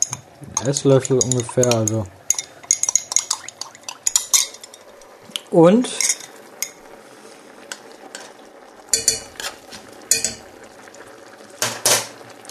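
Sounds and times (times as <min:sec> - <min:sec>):
spoon clinking in a pot: 0:00.0 - 0:04.8, 0:06.0 - 0:06.8, 0:08.9 - 0:10.5
spoon stirring thickener into cucumbers and scraping inside a pot: 0:00.0 - 0:05.0, 0:05.9 - 0:06.8, 0:07.7 - 0:10.5
cucumbers simmering with a soft hiss: 0:00.0 - 0:12.4
speech: 0:00.6 - 0:02.2, 0:05.5 - 0:06.1.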